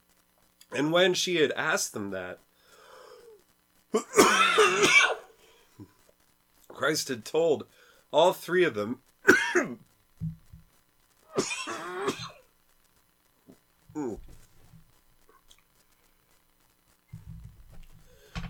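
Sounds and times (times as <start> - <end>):
speech: 0.7 - 2.5, 3.9 - 5.2, 6.8 - 10.4, 14.0 - 14.2
person clearing throat: 4.0 - 5.2, 13.9 - 14.3
person coughing in a coughing fit: 4.0 - 5.3.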